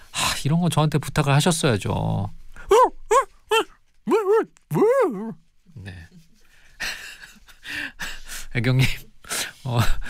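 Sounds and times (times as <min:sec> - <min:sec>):
speech: 0:00.4 - 0:03.0, 0:08.6 - 0:09.0, 0:09.6 - 0:10.0
person imitating dog yelps and whines: 0:02.6 - 0:05.4.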